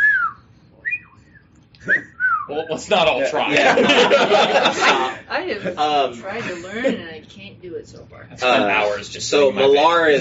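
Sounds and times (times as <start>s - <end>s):
thin tentative wolf whistle: 0.0s - 2.5s
speech: 1.8s - 10.1s
laughter: 3.3s - 7.0s.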